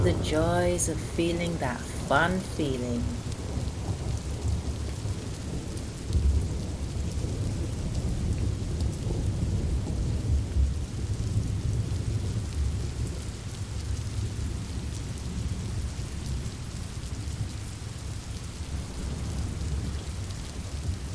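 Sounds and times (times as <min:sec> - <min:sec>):
heavy rain downpour: 0:00.0 - 0:21.1
speech: 0:00.1 - 0:03.2.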